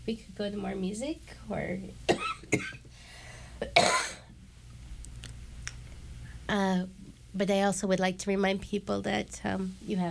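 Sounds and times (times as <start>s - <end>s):
low steady hum: 0.0s - 10.0s
speech: 0.1s - 2.9s, 3.6s - 4.2s, 6.5s - 10.0s
person with a lingering cough coughing: 2.1s - 2.9s, 3.6s - 4.3s.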